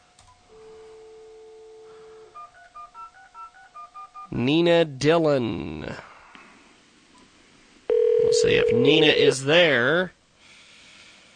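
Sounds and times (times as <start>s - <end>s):
steady phone tone: 0.5s - 4.3s, 7.9s - 9.4s
speech: 4.4s - 6.1s, 8.4s - 10.2s.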